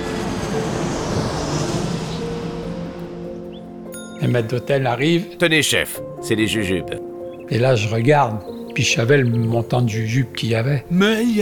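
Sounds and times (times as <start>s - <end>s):
airplane engines roaring during takeoff: 0.0s - 3.9s
whining tonal hum: 0.0s - 3.9s
speech: 4.2s - 11.4s.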